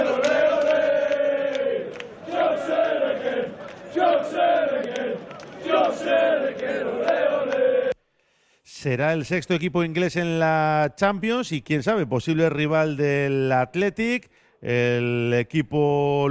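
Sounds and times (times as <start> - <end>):
football supporters chanting while leaving the stadium after a cup final: 0.0 - 8.0
speech: 8.8 - 16.2.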